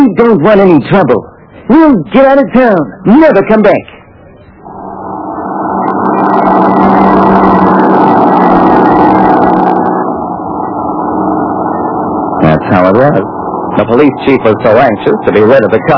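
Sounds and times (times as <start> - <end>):
speech: 0.0 - 4.0, 13.1 - 15.9
hissing whine: 0.0 - 15.9
truck engine running heard from inside the truck: 4.6 - 15.9.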